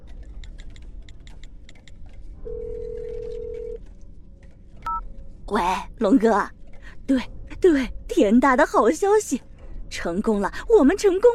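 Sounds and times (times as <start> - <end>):
phone dialing tones: 2.5 - 3.8
speech: 5.5 - 11.3.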